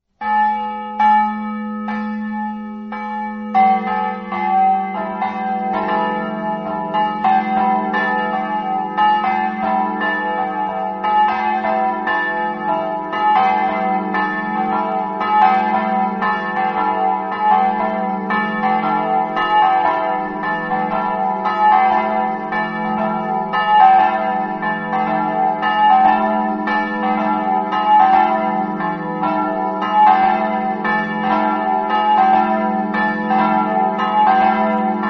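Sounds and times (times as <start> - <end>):
bells in Montefosca: 0.2 - 35.0.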